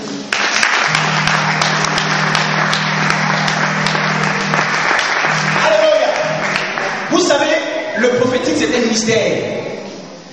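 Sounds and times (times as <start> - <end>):
church congregation applauding during a worship service: 0.0 - 7.6
sustained low note: 0.9 - 8.0
speech: 8.8 - 9.7.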